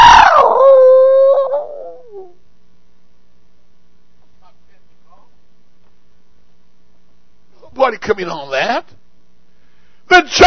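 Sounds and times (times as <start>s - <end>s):
long dog-like howl: 0.0s - 2.4s
speech: 7.8s - 9.0s, 10.1s - 10.4s.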